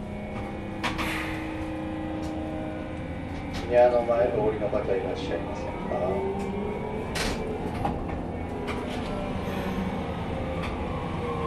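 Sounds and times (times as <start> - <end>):
tram idling at a stop with mechanical hum and rumble: 0.0 - 11.4
speech: 3.7 - 6.7.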